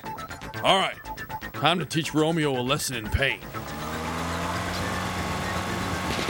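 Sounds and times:
speech: 0:00.6 - 0:01.0, 0:01.6 - 0:03.6
BMW car engine accelerating: 0:03.4 - 0:06.2.

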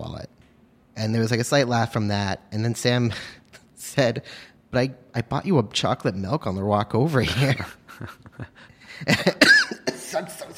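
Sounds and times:
speech: 0:01.0 - 0:03.4, 0:04.0 - 0:10.5
person in a coughing fit: 0:09.1 - 0:10.3.

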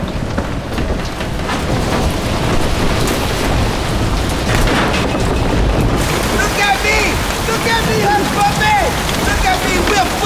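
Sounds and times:
deep low rumbles of thunder: 0:00.0 - 0:10.2
dense rain pouring in a thunderstorm: 0:00.0 - 0:10.2.

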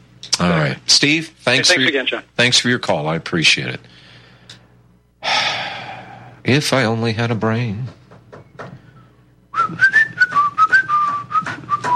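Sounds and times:
speech: 0:00.4 - 0:03.9, 0:06.4 - 0:08.0
person whistling a wavering melody: 0:09.5 - 0:11.9.

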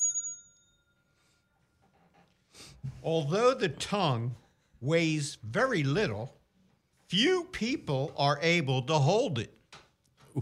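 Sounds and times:
single bell strike with bright clear tone: 0:00.0 - 0:01.2
speech: 0:03.0 - 0:06.4, 0:07.1 - 0:09.6.

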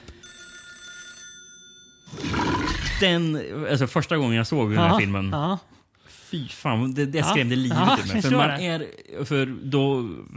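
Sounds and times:
telephone ringing with a shrill electronic trill in a film scene: 0:00.0 - 0:02.6
speech: 0:03.0 - 0:05.7, 0:06.3 - 0:10.3
laughter: 0:07.3 - 0:08.6.

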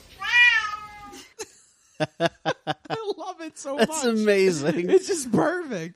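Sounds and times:
cat meowing along to a song: 0:00.2 - 0:01.2
laughter: 0:01.4 - 0:05.8
speech: 0:02.0 - 0:02.6, 0:03.2 - 0:05.9.

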